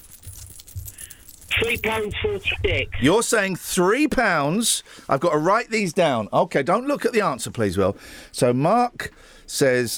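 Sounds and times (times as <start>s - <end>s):
loose coins jingling in a trouser pocket: 0.0s - 2.1s
speech: 1.6s - 9.9s.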